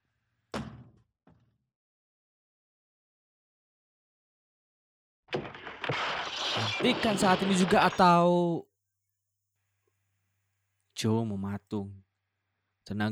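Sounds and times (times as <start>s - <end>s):
bedroom door being kicked open: 0.6s - 1.0s
small thud: 0.6s - 1.4s
rush of noise and commotion: 5.8s - 8.1s
speech: 5.9s - 8.7s, 11.0s - 12.0s, 12.8s - 13.1s.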